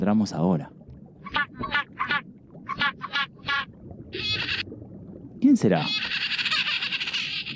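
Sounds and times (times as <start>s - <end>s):
speech: 0.0s - 0.8s, 5.5s - 6.1s
penguin honking and braying calls: 1.2s - 4.6s, 5.9s - 7.5s.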